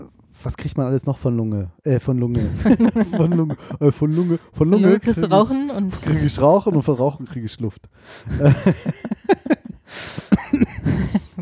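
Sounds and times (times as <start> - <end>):
speech: 0.4 - 9.2
laughter: 2.3 - 4.4, 8.2 - 11.4
harsh breathy cough with rougher hacking: 10.2 - 11.4.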